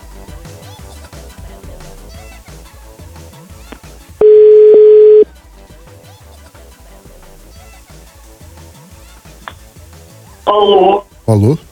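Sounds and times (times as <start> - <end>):
telephone dial tone while a phone call is placed: 4.2 - 5.2
speech: 10.5 - 11.6.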